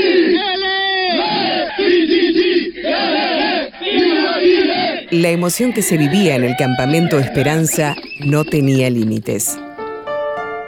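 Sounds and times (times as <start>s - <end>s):
group of trapped Chilean miners chanting a cheer 700 metres underground: 0.0s - 5.1s
speech: 5.1s - 9.7s.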